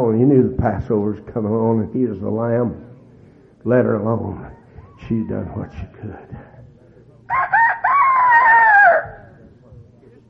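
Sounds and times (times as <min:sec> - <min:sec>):
speech: 0:00.0 - 0:02.9, 0:03.6 - 0:06.5
rooster crowing: 0:07.3 - 0:09.3.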